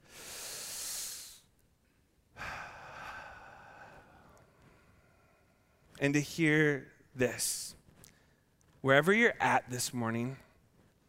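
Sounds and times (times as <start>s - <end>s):
slow deep breath: 0.0s - 1.5s, 2.3s - 6.0s
speech: 6.0s - 7.8s, 8.8s - 10.4s.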